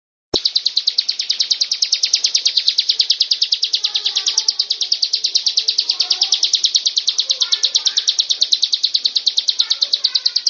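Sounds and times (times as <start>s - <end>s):
prinia song of quick evenly spaced high notes: 0.4s - 10.4s.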